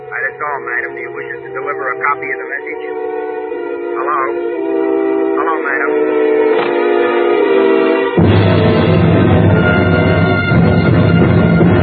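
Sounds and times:
speech: 0.4s - 3.3s, 4.0s - 4.8s
train horn: 2.9s - 11.8s.

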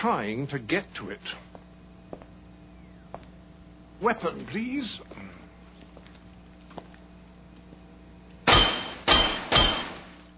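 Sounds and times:
speech: 0.0s - 1.5s, 4.0s - 5.4s
unbreakable glass pane shattered by sonic ring: 8.5s - 10.2s.

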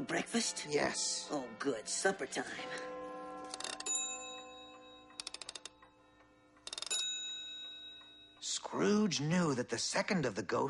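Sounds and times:
speech: 0.0s - 3.0s, 8.7s - 10.6s
clock chiming with bright metallic strikes: 2.7s - 6.0s, 6.6s - 8.5s.

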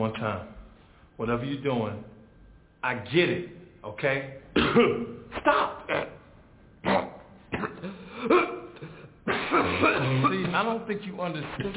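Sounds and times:
speech: 0.0s - 0.6s, 1.2s - 2.2s, 2.8s - 6.1s, 9.5s - 11.7s
person coughing as a signal: 4.6s - 6.2s, 6.8s - 10.6s
rough throat-clearing: 4.6s - 6.2s, 6.8s - 10.6s.

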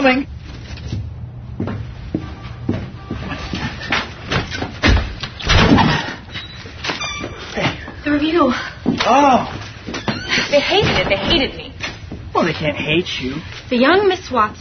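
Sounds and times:
speech: 0.0s - 1.0s, 8.2s - 9.6s, 10.5s - 11.7s, 12.4s - 14.6s
stuck door being shoved and rattled open: 4.3s - 6.2s.

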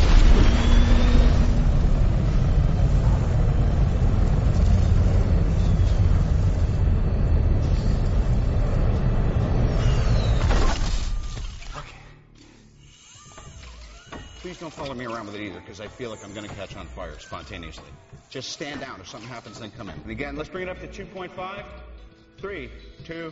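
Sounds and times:
thruster firing at 1% thrust capacity: 0.0s - 10.6s
speech: 14.7s - 23.3s.

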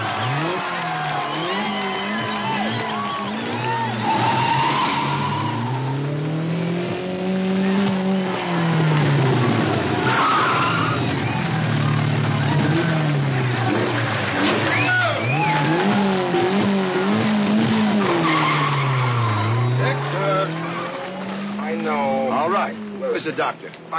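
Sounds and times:
car engine revving hard on a cross-country record run: 0.0s - 23.9s
car tires squealing and skidding: 0.0s - 23.9s
speech: 23.4s - 23.9s.

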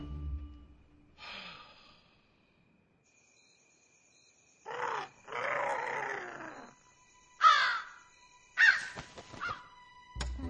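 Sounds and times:
crow cawing: 4.7s - 6.6s, 7.4s - 8.0s, 8.6s - 9.7s.

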